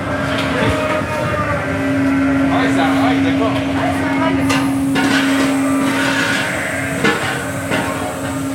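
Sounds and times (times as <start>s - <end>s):
livestock feeder machine distributing feed to sheep rumbling: 0.0s - 8.5s
sharp metallic clanks: 4.4s - 8.5s.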